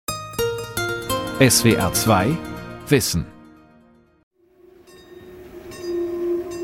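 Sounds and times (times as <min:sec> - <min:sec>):
speech: 0:01.4 - 0:03.3
railway station bell ringing: 0:04.8 - 0:06.6.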